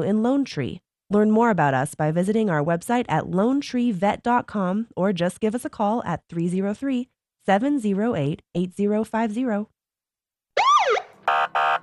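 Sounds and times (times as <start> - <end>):
speech: 0.0 - 9.7
police car sirens blaring: 10.6 - 11.8.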